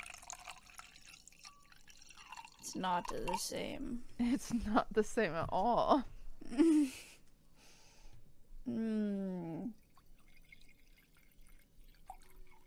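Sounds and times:
voice imitating liquid pouring into a wine glass: 0.0 - 3.8, 9.1 - 12.6
speech: 2.7 - 7.1, 8.7 - 9.8.

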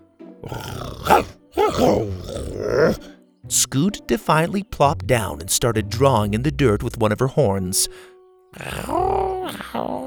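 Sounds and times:
human voice imitating a creature's growl: 0.4 - 3.1, 8.6 - 10.0
speech: 3.5 - 10.0.

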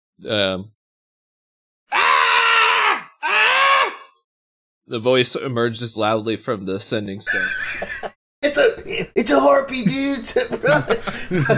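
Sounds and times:
speech: 0.2 - 0.8, 4.9 - 11.5
person screaming: 1.9 - 4.2
laughter: 7.2 - 8.2, 10.3 - 11.5.

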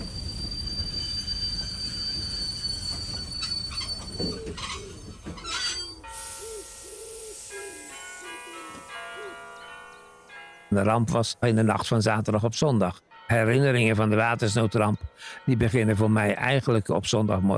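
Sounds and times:
high metallic train wheel squeals and brake screeches: 0.0 - 6.6
train rolling into a station with low rumble: 0.0 - 8.2
speech: 4.2 - 4.9, 10.7 - 17.5.

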